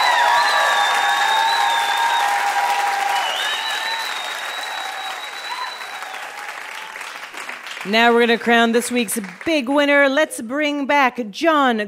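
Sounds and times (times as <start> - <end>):
audience whistles: 0.0 - 6.4
scattered cheers: 0.0 - 7.3
large audience applauding a guest on stage: 0.0 - 9.7
speech: 7.8 - 11.8.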